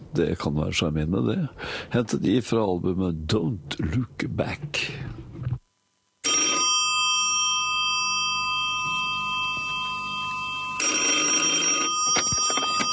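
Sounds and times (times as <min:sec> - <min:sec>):
speech: 0:00.1 - 0:05.3
old-fashioned telephone bell ringing: 0:06.2 - 0:12.9.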